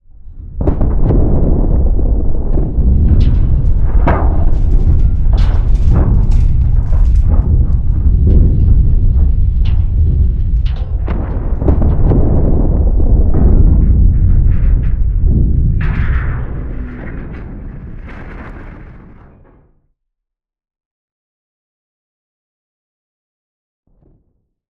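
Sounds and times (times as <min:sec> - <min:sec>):
combat explosions: 0:00.3 - 0:19.7
debris from combat explosions: 0:00.4 - 0:19.5.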